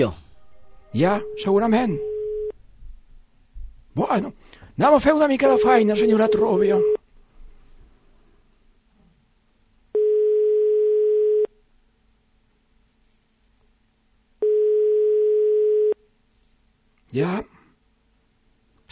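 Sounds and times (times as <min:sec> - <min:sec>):
speech: 0:00.0 - 0:00.2, 0:00.9 - 0:02.1, 0:04.0 - 0:06.9
telephone ringback tone during an outgoing call: 0:01.0 - 0:02.5, 0:05.4 - 0:07.0, 0:10.0 - 0:11.5, 0:14.4 - 0:16.0.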